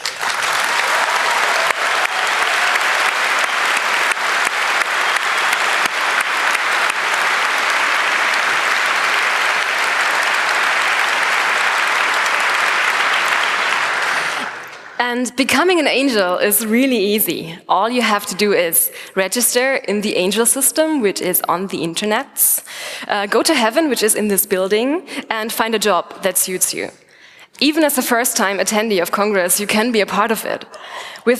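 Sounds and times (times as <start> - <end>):
large crowd applauding at a congress: 0.0 - 15.0
speech: 15.3 - 31.3.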